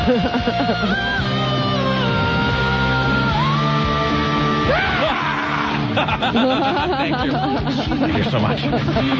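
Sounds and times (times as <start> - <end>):
laughter: 0.0 - 1.2, 5.7 - 9.1
sustained wailing singing: 0.0 - 5.9
full musical backing: 0.0 - 9.1
speech: 0.1 - 1.6, 6.1 - 9.1
harsh strained scream: 4.4 - 5.9.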